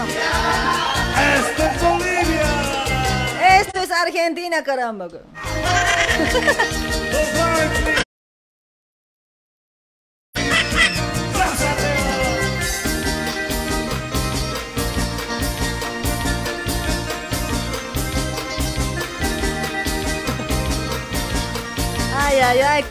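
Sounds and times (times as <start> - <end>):
loud dense folk music: 0.0 - 3.6, 5.4 - 8.0, 10.4 - 22.8
laughter: 0.3 - 3.3, 5.4 - 6.8
speech: 4.0 - 8.0
zapateo dance foot stomping: 20.0 - 21.5.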